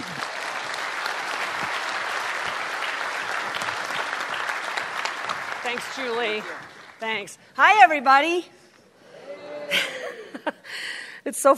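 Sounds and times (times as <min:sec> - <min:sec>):
sizable audience applauding welcoming a speaker: 0:00.0 - 0:07.2
speech: 0:05.8 - 0:08.6, 0:09.7 - 0:10.0, 0:11.2 - 0:11.5
laughter: 0:09.5 - 0:10.7.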